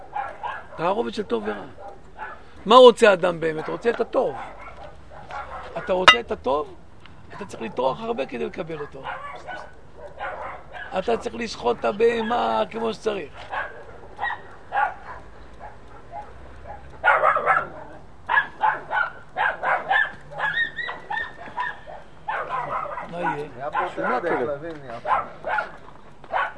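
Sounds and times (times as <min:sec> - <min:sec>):
dog barking: 0:00.0 - 0:02.5, 0:03.6 - 0:05.9, 0:08.8 - 0:11.0, 0:13.3 - 0:26.5
speech: 0:00.8 - 0:01.8, 0:02.6 - 0:04.6, 0:05.8 - 0:09.7, 0:10.9 - 0:13.6, 0:23.8 - 0:25.6
dog yipping and whining: 0:18.3 - 0:23.4.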